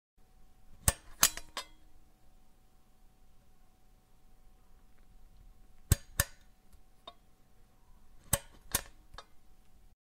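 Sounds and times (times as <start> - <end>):
house lamp switch turning on and off: 0.8 - 1.7, 5.8 - 7.2, 8.2 - 9.4.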